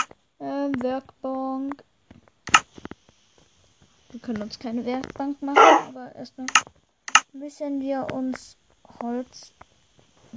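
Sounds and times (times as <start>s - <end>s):
speech: 0.7s - 1.9s, 4.2s - 9.6s
video game wolf barking: 5.5s - 5.9s.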